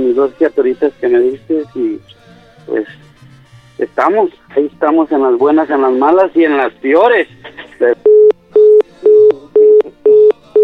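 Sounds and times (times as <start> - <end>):
speech: 0.2 - 3.1, 3.8 - 8.1
telephone busy signal after a dropped call: 8.1 - 10.6.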